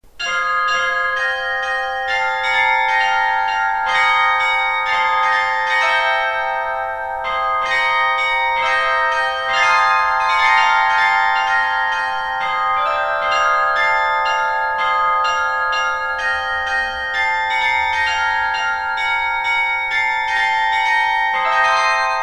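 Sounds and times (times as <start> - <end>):
Grassmayr 13-bell glockenspiel: 0.0 - 22.2.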